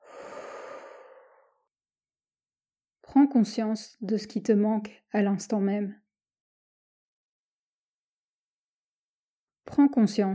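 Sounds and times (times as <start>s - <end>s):
person exhaling through the mouth during a guided relaxation exercise: 0.0s - 1.6s
speech: 3.1s - 6.0s, 9.8s - 10.3s.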